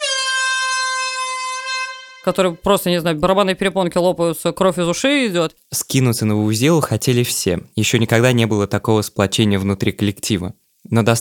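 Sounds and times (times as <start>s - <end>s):
vuvuzela horn blast: 0.0s - 2.3s
speech: 2.2s - 11.1s.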